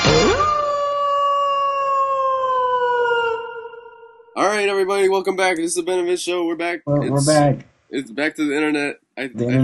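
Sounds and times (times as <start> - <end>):
wolf howling: 0.1 - 4.4
speech: 4.8 - 9.6.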